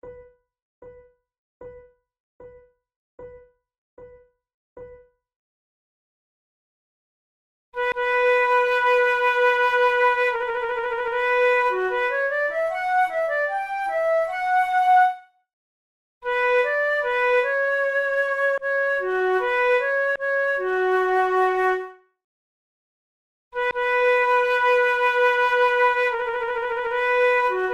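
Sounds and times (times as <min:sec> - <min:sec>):
two flutes playing an allemande: 0:07.8 - 0:15.2, 0:16.3 - 0:21.9, 0:23.7 - 0:27.7.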